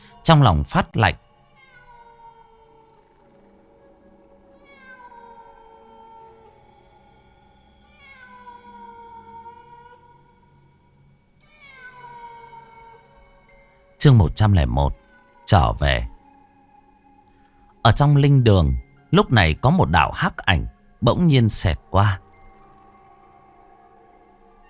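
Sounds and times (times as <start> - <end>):
speech: 0.2 - 1.2, 14.0 - 16.1, 17.8 - 22.2
cats yowling mournfully in an eerie chorus: 1.4 - 10.5, 11.4 - 13.9, 14.6 - 16.4, 22.2 - 24.6.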